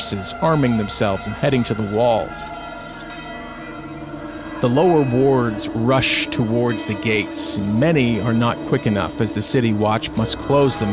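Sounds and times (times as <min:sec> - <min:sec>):
city alarm bells ringing: 0:00.0 - 0:10.9
speech: 0:00.1 - 0:02.6, 0:04.6 - 0:10.9.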